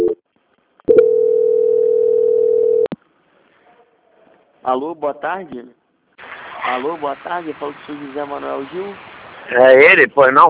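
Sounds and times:
telephone line tone during a call transfer: 0:00.9 - 0:02.9
speech: 0:04.7 - 0:05.8, 0:06.6 - 0:10.4.

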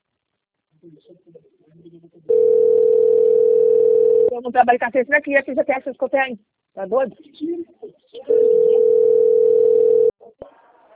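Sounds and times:
speech: 0:00.8 - 0:08.7
telephone ringback tone while a call connects: 0:02.3 - 0:04.3, 0:08.3 - 0:10.1.

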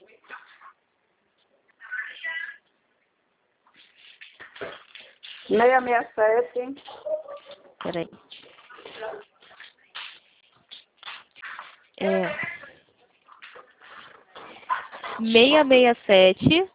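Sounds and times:
speech: 0:05.5 - 0:07.0, 0:07.8 - 0:08.2, 0:15.2 - 0:16.7
dog barking and whimpering: 0:06.8 - 0:07.8.

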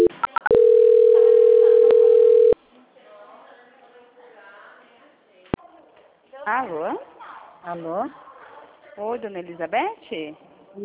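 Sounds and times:
steady telephone tone while a call is transferred: 0:00.0 - 0:02.6
speech: 0:07.7 - 0:08.3, 0:09.0 - 0:10.8.

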